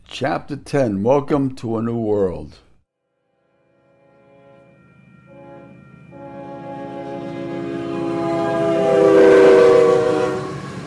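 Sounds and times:
speech: 0.2s - 2.7s
train horn blaring in a long steady chord: 3.1s - 10.8s.

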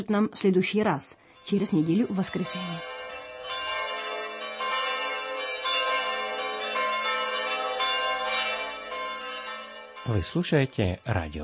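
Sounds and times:
speech: 0.0s - 3.0s, 10.1s - 11.4s
church bells pealing: 1.4s - 11.4s.

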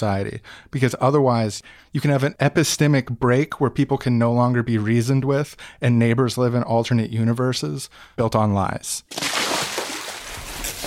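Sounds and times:
speech: 0.0s - 9.4s
watery splashing and sloshing: 9.1s - 10.8s.

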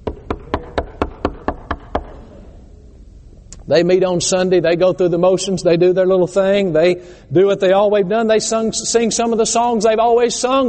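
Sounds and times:
fist knocking on a wooden door: 0.0s - 2.1s
speech: 3.7s - 10.6s.

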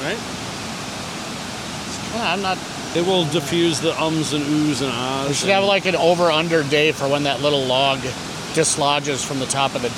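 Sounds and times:
babbling brook flowing: 0.0s - 9.9s
speech: 2.2s - 9.9s.

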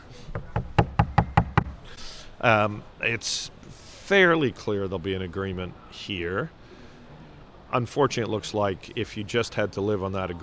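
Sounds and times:
faint murmur of room noise: 0.0s - 10.4s
knuckles knocking on wood: 0.3s - 1.8s
speech: 2.4s - 6.6s, 7.7s - 10.4s.

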